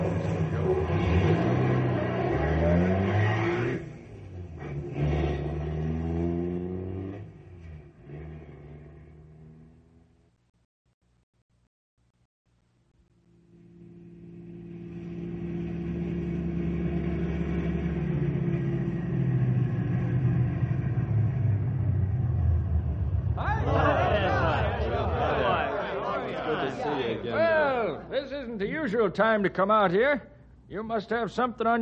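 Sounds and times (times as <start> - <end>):
car engine revving as it pulls away: 0.0 - 10.2, 14.1 - 26.2
laughter: 23.4 - 28.2
speech: 29.0 - 31.8.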